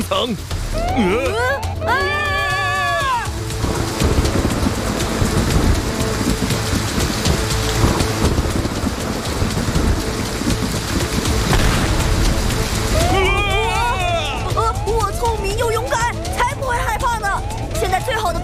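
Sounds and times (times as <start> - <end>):
heavy steady rain: 0.0 - 18.4
speech: 0.1 - 2.2
deep rumbling thunder: 3.3 - 18.4
lightning strike: 3.6 - 14.8.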